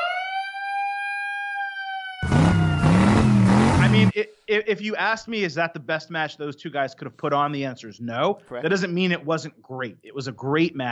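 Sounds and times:
loud siren: 0.0s - 4.1s
burst of dense noise: 2.2s - 4.3s
speech: 4.0s - 10.9s.

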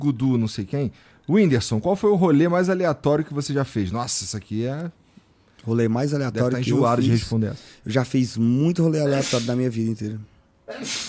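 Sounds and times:
speech: 0.0s - 5.0s, 5.6s - 11.0s
person sneezing: 9.1s - 9.6s, 10.7s - 11.0s.

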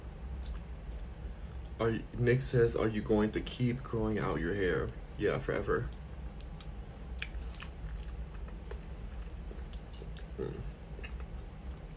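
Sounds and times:
low hum: 0.0s - 11.9s
wet munching and chewing of berry mango porridge: 0.3s - 0.7s, 5.9s - 11.9s
speech: 1.8s - 6.0s.

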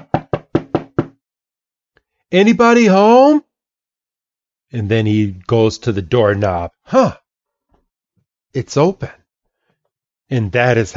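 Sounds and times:
firm knocking on a wooden door: 0.0s - 1.2s
speech: 2.3s - 3.5s, 4.7s - 7.2s, 8.5s - 9.2s, 10.3s - 10.9s.

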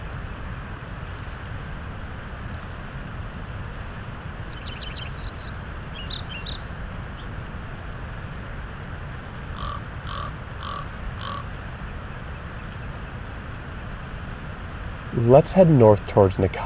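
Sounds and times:
low wind-like rumble: 0.0s - 16.6s
faint high bird chirps: 4.6s - 7.2s
raven croaking: 9.5s - 11.5s
speech: 15.2s - 16.6s.

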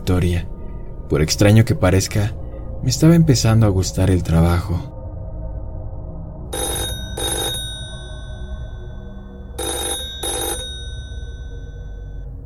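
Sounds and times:
speech: 0.1s - 0.5s, 1.1s - 4.9s
telephone ringing: 6.5s - 12.3s.

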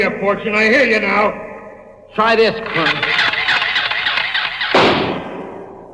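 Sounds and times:
speech: 0.0s - 1.5s, 2.1s - 3.0s
toy atomic blaster ray gun, junior space cadet size, firing: 2.7s - 5.2s.

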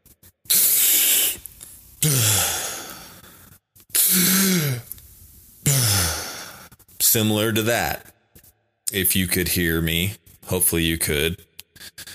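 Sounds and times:
deep breathing during a breathing exercise: 0.5s - 5.0s, 5.6s - 6.8s
speech: 2.0s - 2.5s, 7.1s - 8.1s, 8.9s - 11.5s.

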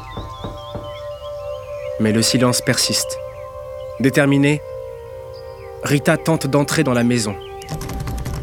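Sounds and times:
firm knocks on the door of a house: 0.0s - 1.2s
speech: 2.0s - 3.3s, 4.0s - 4.7s, 5.8s - 7.9s.

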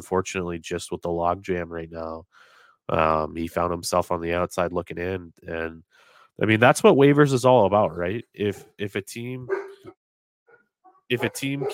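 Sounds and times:
speech: 0.0s - 10.0s, 11.1s - 11.7s
dogs barking and whining: 9.5s - 11.7s.

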